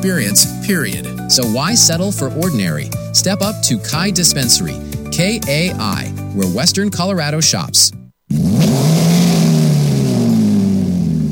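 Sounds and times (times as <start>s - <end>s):
speech: 0.0s - 8.4s
hot rod engine revving: 8.3s - 11.3s.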